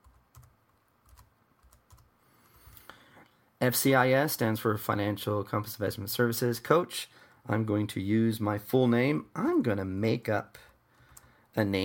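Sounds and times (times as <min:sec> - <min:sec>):
typing an email address on a computer keyboard: 0:00.0 - 0:02.1
speech: 0:03.6 - 0:10.7, 0:11.6 - 0:11.8.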